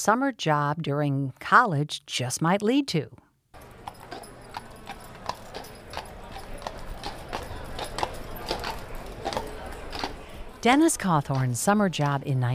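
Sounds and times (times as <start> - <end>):
speech: 0.0 - 3.2, 10.6 - 12.5
horse hooves clip-clopping on pavement: 3.6 - 12.5
low rumbling street background: 3.6 - 12.5.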